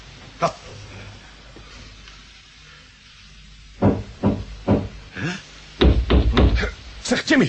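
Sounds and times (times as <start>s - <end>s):
speech: 0.4s - 0.7s
knocking on a rocket hull: 3.8s - 5.0s, 5.8s - 6.7s.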